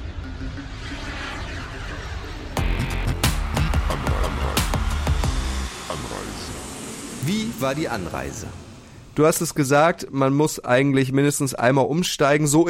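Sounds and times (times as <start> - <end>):
loud airplane engine drone: 0.0 - 10.1
speech: 7.3 - 8.6, 9.2 - 12.6.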